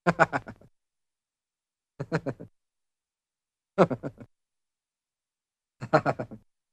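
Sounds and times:
cartoon man chuckling: 0.1 - 0.7, 2.0 - 2.5, 3.8 - 4.3, 5.8 - 6.4.

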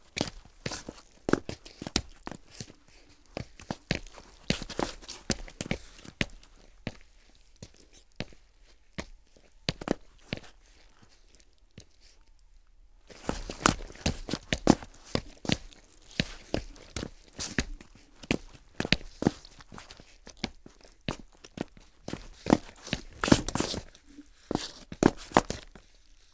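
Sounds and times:
multiple footsteps on ice: 0.2 - 8.4, 13.1 - 25.9.

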